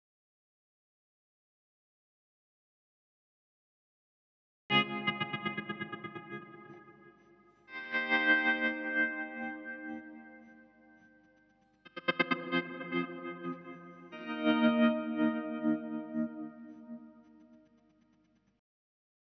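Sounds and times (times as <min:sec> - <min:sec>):
guitar: 0:04.7 - 0:17.8.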